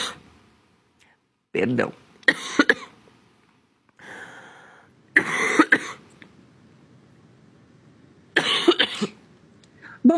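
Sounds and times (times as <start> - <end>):
speech: 1.5 - 2.4
harsh rapid coughing fit: 2.3 - 3.0, 5.2 - 6.1, 8.4 - 9.2.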